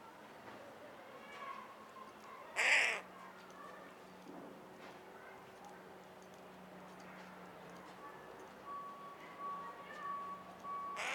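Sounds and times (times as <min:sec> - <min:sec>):
faint background noise: 0:00.0 - 0:11.1
carrion crow Corvus corone cawing: 0:02.6 - 0:03.0, 0:11.0 - 0:11.1.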